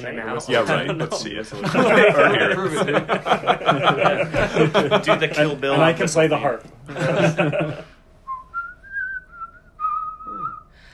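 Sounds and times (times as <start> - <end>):
speech: 0.0 - 7.9
laughter: 0.5 - 8.0
person whistling a tune: 8.3 - 10.8.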